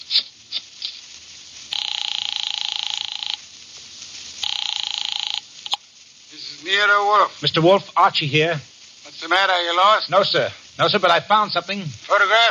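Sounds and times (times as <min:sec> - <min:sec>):
phone dialing clicks: 0:01.8 - 0:03.4, 0:04.4 - 0:05.8
speech: 0:06.6 - 0:12.4.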